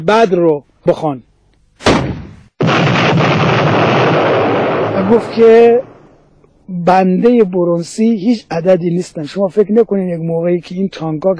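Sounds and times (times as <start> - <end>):
speech: 0.0 - 2.1, 5.0 - 5.9, 6.7 - 11.3
artillery shell fired with a heavy blast: 1.8 - 6.2
dense roaring rumble of continuous noise: 2.6 - 6.2.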